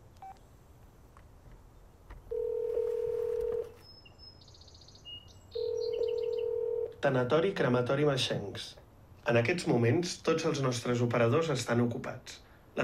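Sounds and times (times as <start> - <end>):
quiet hiss: 0.0 - 12.8
mobile phone keypad dialing tones: 2.3 - 3.8, 5.6 - 7.0
speech: 7.0 - 12.8.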